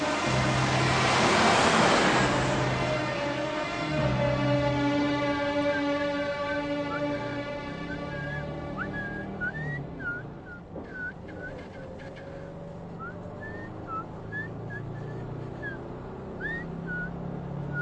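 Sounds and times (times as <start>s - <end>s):
steady droning hum: 0.0s - 10.6s
person whistling short chirping notes: 5.6s - 11.6s, 13.0s - 15.8s, 16.4s - 17.7s.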